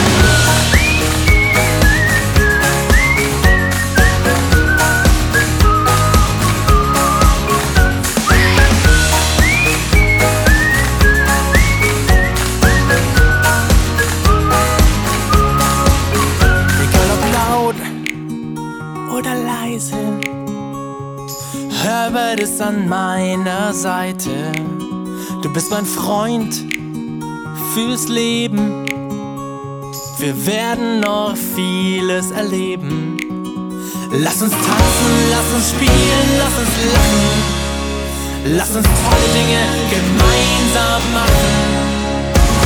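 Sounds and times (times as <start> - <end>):
bright whistled melody with sliding notes: 0.0 - 17.9, 34.2 - 42.6
loud bouncy pop track with a steady beat: 0.0 - 20.6, 21.3 - 27.0, 29.9 - 42.6
speech: 22.6 - 24.9, 25.5 - 26.8, 27.8 - 28.8, 30.2 - 33.2, 34.1 - 37.6, 38.4 - 41.9.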